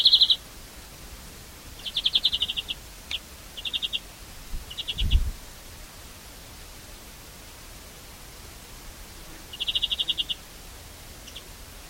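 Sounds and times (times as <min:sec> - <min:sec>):
European greenfinch Chloris chloris chip calls: 0:00.0 - 0:00.4, 0:01.8 - 0:04.0, 0:04.7 - 0:05.2, 0:09.5 - 0:10.4, 0:11.2 - 0:11.5.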